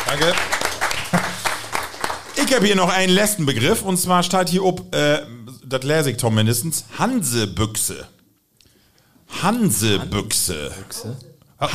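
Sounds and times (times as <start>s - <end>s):
audience applause: 0.0s - 2.8s
speech: 0.1s - 0.7s, 2.4s - 8.2s, 9.3s - 11.7s
laughter: 0.9s - 1.6s.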